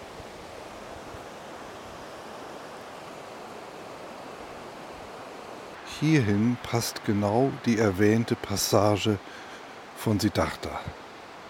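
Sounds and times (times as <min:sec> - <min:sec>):
river current rushing and breaking on rocks: 0:00.0 - 0:11.4
speech: 0:06.0 - 0:09.4, 0:10.0 - 0:11.0.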